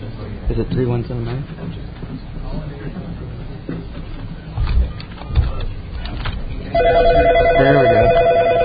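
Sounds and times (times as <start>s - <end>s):
speech: 0.6s - 1.8s, 6.8s - 8.2s
telephone ringing through a phone line: 6.7s - 8.6s.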